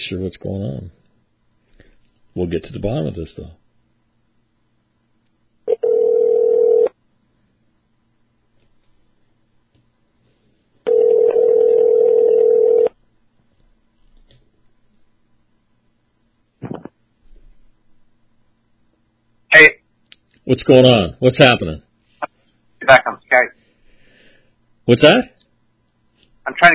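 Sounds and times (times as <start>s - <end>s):
speech: 0.1s - 1.0s, 2.4s - 3.6s, 20.5s - 21.9s, 22.8s - 23.6s, 24.9s - 25.4s, 26.4s - 26.7s
cell phone ringback tones: 5.7s - 6.9s, 10.9s - 12.9s.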